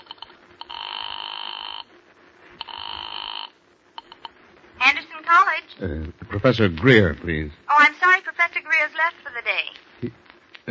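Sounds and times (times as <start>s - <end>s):
telephone ringing in long buzzing bursts: 0.0s - 1.9s, 2.6s - 4.2s
speech: 5.3s - 10.6s.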